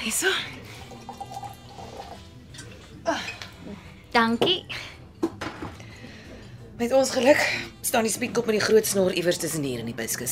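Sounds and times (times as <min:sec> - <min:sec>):
speech: 0:00.1 - 0:00.6, 0:03.1 - 0:04.9, 0:06.8 - 0:10.2
grape juice being poured into a glass: 0:00.6 - 0:02.8
glasses of grape juice clinking in a toast: 0:00.9 - 0:03.5.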